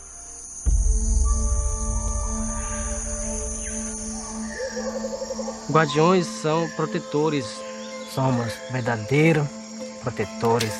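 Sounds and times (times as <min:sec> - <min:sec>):
Amazon rainforest night insect and cricket drones: 0:00.0 - 0:10.7
brief warbling bird call: 0:01.9 - 0:06.0
speech: 0:05.7 - 0:07.6, 0:08.2 - 0:10.7.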